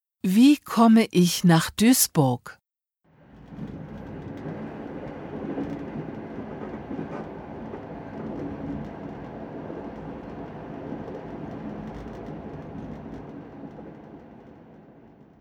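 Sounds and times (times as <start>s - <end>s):
speech: 0.2s - 2.6s
train rolling along rails with rhythmic clatter: 3.1s - 15.3s.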